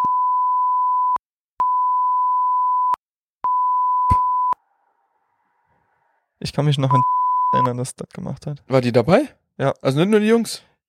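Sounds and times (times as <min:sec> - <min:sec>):
censor bleeps covering spoken names: 0:00.0 - 0:04.6, 0:06.8 - 0:07.8
speech: 0:06.6 - 0:10.8.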